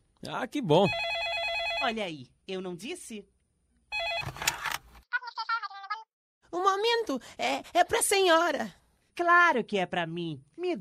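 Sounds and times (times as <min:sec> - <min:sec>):
speech: 0:00.2 - 0:01.1, 0:01.8 - 0:03.4, 0:06.6 - 0:10.7
telephone ringing in bright trilling bursts: 0:00.8 - 0:02.0, 0:03.9 - 0:04.7.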